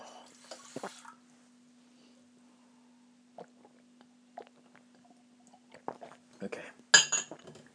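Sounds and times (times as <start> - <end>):
water pouring: 0.1 - 1.2
glass and hard tableware clinking as someone gets water to drink: 7.0 - 7.6.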